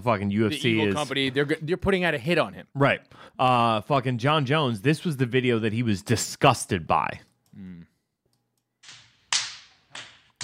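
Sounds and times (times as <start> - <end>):
speech: 0.0 - 7.9
hand slapping a face with sharp fleshy slaps: 8.8 - 10.4.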